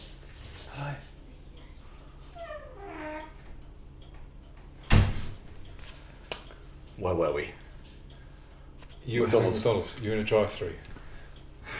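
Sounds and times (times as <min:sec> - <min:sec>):
door shutting with a thud: 0:04.9 - 0:05.4
speech: 0:07.0 - 0:07.6, 0:09.0 - 0:10.9.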